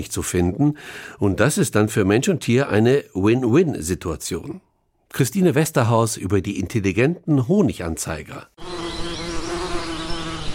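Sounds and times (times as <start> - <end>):
speech: 0.0 - 8.6
many wild bees buzzing: 8.6 - 10.5.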